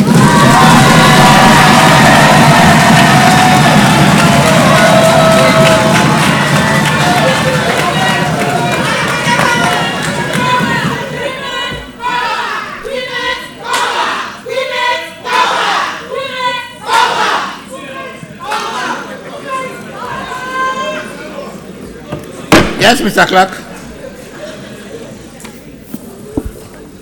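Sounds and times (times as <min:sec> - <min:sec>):
large crowd applauding loudly: 0:00.0 - 0:11.6
large crowd cheering and shouting: 0:00.0 - 0:19.2
speech: 0:23.0 - 0:23.6.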